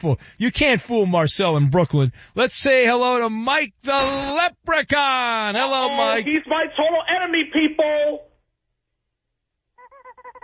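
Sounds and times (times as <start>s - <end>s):
speech: 0.0s - 8.3s
rubber chicken toy squawking: 9.8s - 10.4s.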